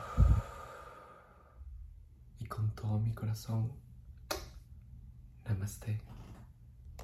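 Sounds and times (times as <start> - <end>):
long soft exhalation during guided breathing: 0.0 - 1.7
speech: 2.8 - 3.8, 5.5 - 6.2.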